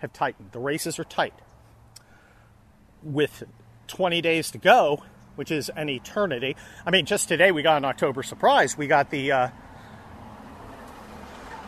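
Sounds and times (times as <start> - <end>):
speech: 0.0 - 1.5, 3.0 - 9.6
truck passing by: 1.6 - 11.6.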